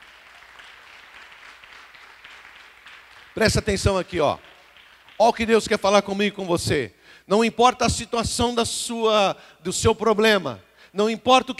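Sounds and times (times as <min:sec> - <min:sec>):
congregation applauding during a church sermon: 0:00.0 - 0:06.4
speech: 0:03.4 - 0:04.5, 0:05.2 - 0:11.5.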